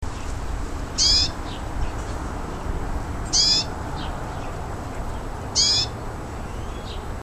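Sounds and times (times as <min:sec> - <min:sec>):
background Passer montanus calls: 0:00.0 - 0:07.2
Sylvia curruca fledgling call: 0:01.0 - 0:01.6, 0:03.3 - 0:04.1, 0:05.5 - 0:07.0.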